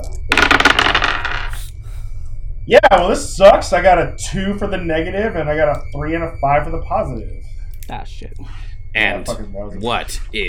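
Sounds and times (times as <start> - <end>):
dice rolled for a game check rattling on a hard surface: 0.3 - 1.6
speech: 2.7 - 10.4.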